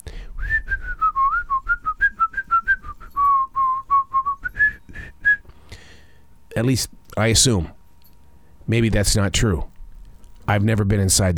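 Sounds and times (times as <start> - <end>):
person whistling a lively wandering melody: 0.4 - 5.4
speech: 6.6 - 7.8, 8.7 - 9.7, 10.5 - 11.3.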